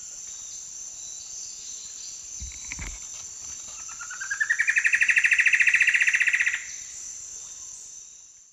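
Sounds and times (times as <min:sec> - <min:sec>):
shrill insect buzz: 0:00.0 - 0:08.5
plumbeous antbird Myrmeciza hyperythra song in South American eastern lowlands: 0:03.8 - 0:07.0.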